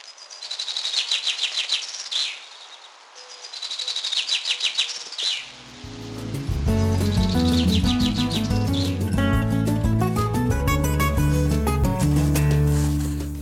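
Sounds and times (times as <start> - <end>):
common chaffinch singing: 0.1 - 9.8
loud music: 6.0 - 13.4.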